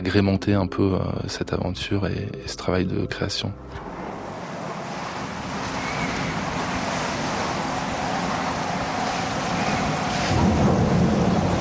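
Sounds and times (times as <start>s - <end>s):
speech: 0.0s - 3.9s
heavy storm waves crashing and surging: 3.8s - 11.6s
storm wind hissing: 3.9s - 11.6s
deep rumble of thunder-like noise: 9.5s - 11.6s.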